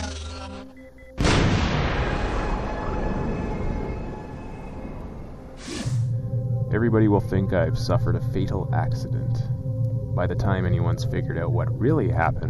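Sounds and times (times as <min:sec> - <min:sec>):
torpedo exploding over a city district: 0:01.2 - 0:06.5
speech: 0:06.8 - 0:12.4.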